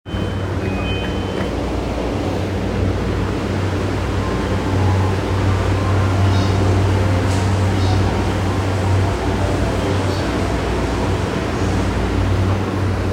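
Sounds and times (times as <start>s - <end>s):
train in Japan: 0.1s - 13.1s.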